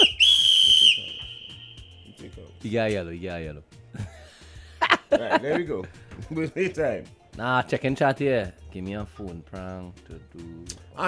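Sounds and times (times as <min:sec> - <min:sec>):
whistle blown in a long shrill blast: 0:00.0 - 0:02.6
speech: 0:02.6 - 0:04.1, 0:05.1 - 0:11.0
laughter: 0:03.9 - 0:06.8.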